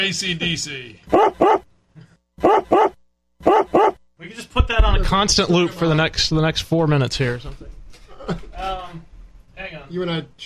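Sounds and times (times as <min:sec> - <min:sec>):
speech: 0:00.0 - 0:01.6, 0:05.1 - 0:07.6, 0:09.9 - 0:10.4
dog bark sound effect: 0:01.1 - 0:01.7, 0:02.4 - 0:04.0.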